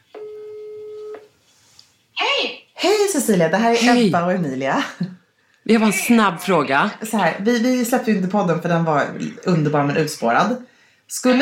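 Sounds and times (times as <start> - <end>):
telephone ring tone of a call being placed: 0.2 - 1.1
speech: 2.4 - 11.4.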